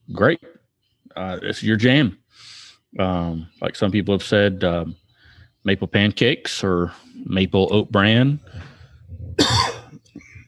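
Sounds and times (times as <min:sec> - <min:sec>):
speech: 0:00.2 - 0:00.5, 0:01.2 - 0:05.0, 0:05.6 - 0:08.7
single sharp loud cough: 0:09.4 - 0:10.4.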